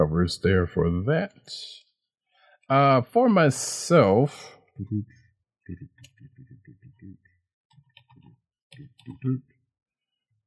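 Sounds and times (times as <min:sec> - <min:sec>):
speech: 0:00.0 - 0:01.8, 0:02.7 - 0:06.1, 0:09.1 - 0:09.5
keyboard typing: 0:05.7 - 0:09.4.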